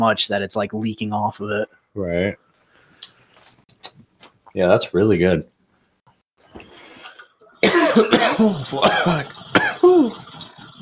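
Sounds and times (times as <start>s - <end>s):
speech: 0.0s - 2.4s, 4.5s - 5.5s, 8.0s - 10.2s
person clearing throat: 7.6s - 10.2s
person coughing in harsh bursts: 7.6s - 10.2s.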